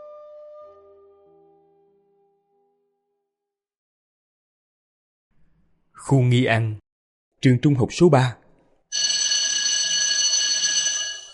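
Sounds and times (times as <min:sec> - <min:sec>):
speech: 0:06.0 - 0:06.8, 0:07.4 - 0:08.4
electric school bell ringing for end of class at a secondary school: 0:09.0 - 0:11.3.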